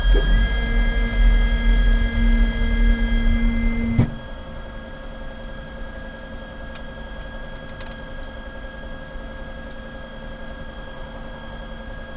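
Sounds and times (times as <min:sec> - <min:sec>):
Gloster Meteor F Mk8 fighter jet canopy closing, interior: 0:00.1 - 0:04.3.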